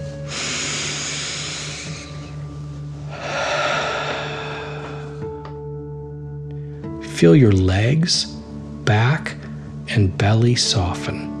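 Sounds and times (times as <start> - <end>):
deep breath drawn in through the nose: 0.1 - 5.4
long forceful exhale: 0.2 - 2.4, 3.1 - 5.3
speech: 7.2 - 9.0, 10.0 - 11.3.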